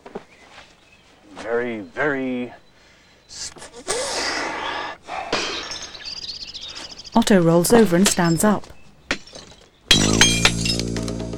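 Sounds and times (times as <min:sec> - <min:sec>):
speech: 0:01.4 - 0:02.6, 0:07.3 - 0:08.7
falling glass shards tinkling: 0:05.3 - 0:11.2
glass panel in a back door smashed: 0:05.4 - 0:07.2, 0:09.1 - 0:11.3.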